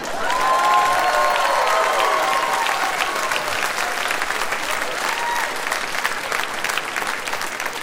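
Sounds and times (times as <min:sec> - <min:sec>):
whoops and cheers: 0:00.0 - 0:05.9
audience applause: 0:00.0 - 0:07.8.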